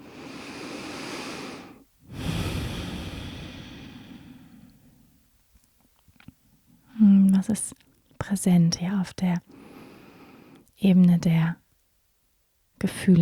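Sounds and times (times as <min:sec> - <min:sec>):
slow deep breaths during a guided meditation: 0:00.0 - 0:05.2, 0:09.5 - 0:10.7
speech: 0:07.4 - 0:09.6, 0:10.8 - 0:11.6, 0:12.8 - 0:13.1.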